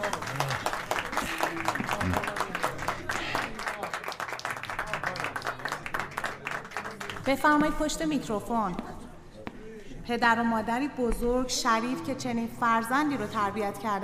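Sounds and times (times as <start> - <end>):
audience applause: 0.0 - 7.3
faint voices murmuring: 0.0 - 7.3
speech: 7.3 - 8.9, 10.1 - 14.0.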